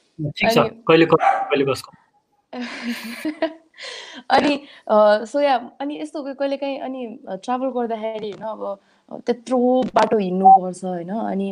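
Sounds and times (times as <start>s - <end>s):
speech: 0.2s - 11.5s
dog barking: 1.2s - 1.8s.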